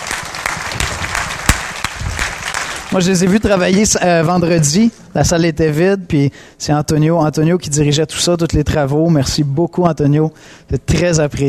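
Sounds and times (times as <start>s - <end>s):
group applauding in a church hall: 0.0s - 3.8s
speech: 2.9s - 11.4s.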